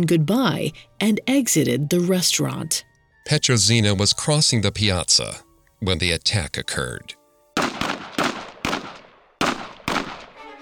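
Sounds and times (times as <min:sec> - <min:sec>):
speech: 0:00.0 - 0:07.2
loud gunshots in a piazza with a sharp crack and echo: 0:07.6 - 0:10.4.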